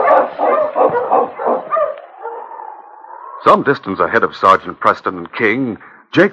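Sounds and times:
husky barking in sharp yelping barks: 0.0 - 3.4
speech: 3.4 - 6.3.

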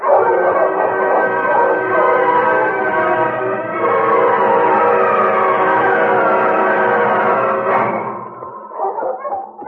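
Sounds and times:
pack of husky dogs barking and yipping: 0.0 - 3.4, 8.7 - 9.6
husky dogs howling: 0.0 - 9.6.

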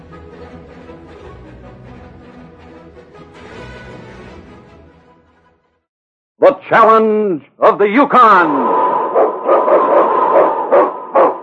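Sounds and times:
speech: 6.4 - 9.4
husky sled dog barking: 8.6 - 11.4.

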